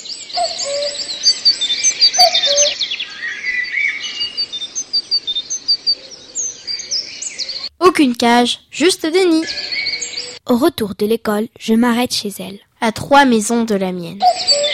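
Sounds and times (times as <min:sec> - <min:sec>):
small birds chirping and twittering in a garden and house: 0:00.0 - 0:07.7, 0:08.7 - 0:10.4, 0:14.2 - 0:14.7
speech: 0:08.0 - 0:09.7, 0:10.5 - 0:14.4.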